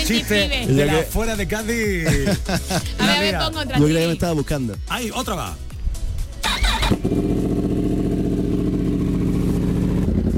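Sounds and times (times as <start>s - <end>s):
speech: 0.1s - 5.6s, 6.9s - 7.4s
laughter: 1.9s - 3.4s
powerful motorcycle engine revving and rumbling: 6.4s - 10.3s.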